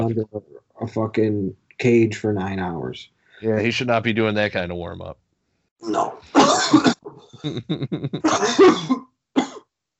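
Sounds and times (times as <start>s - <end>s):
laughter: 0.0s - 5.1s, 7.4s - 8.6s
speech: 0.0s - 5.2s, 5.8s - 9.1s
harsh raspy hacking coughing fit: 6.4s - 9.6s.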